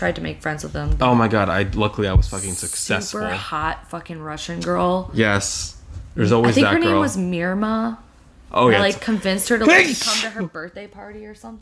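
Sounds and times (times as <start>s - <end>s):
people chatting casually: 0.0s - 8.0s, 8.6s - 11.5s
speech: 0.0s - 11.5s
sneeze: 9.7s - 10.4s.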